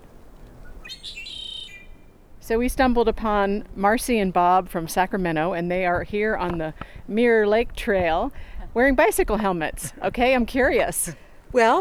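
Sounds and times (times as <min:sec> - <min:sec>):
red-winged blackbird giving a bright buzzy call on the Mirror Lake Trail in Yosemite: 0:00.0 - 0:02.4
low outdoor rumble on the Mirror Lake Trail in Yosemite: 0:00.0 - 0:11.7
speech: 0:02.5 - 0:11.7.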